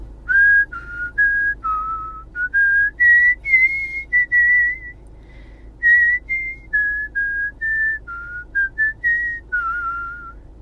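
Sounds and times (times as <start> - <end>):
woman whistling a melody solo: 0.3 - 5.0, 5.8 - 10.4
breaths: 5.1 - 5.8.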